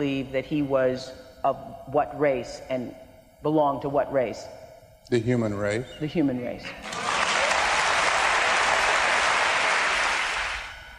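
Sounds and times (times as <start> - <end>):
speech: 0.0 - 7.0
audience applause: 6.8 - 10.7.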